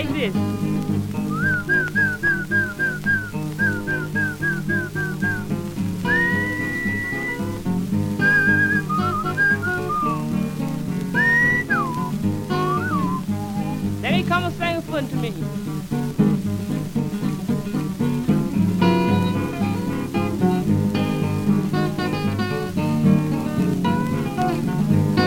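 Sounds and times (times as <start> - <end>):
speech: 0.0 - 1.4
steady musical backing: 0.0 - 25.2
person whistling to call a horse: 1.3 - 7.6, 8.2 - 10.2, 11.2 - 13.2.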